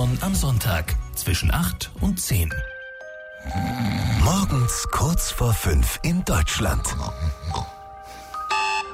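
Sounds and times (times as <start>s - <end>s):
speech: 0.0s - 2.8s, 3.4s - 7.8s
electronic alarm clock buzzing beep: 8.4s - 8.9s.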